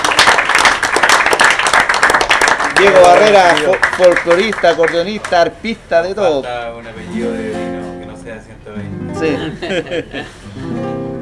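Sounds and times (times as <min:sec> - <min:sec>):
audience applause at a live folk-music and improvised-verse event: 0:00.0 - 0:05.3
speech: 0:02.8 - 0:07.7, 0:08.3 - 0:10.8
laughter: 0:09.1 - 0:10.6.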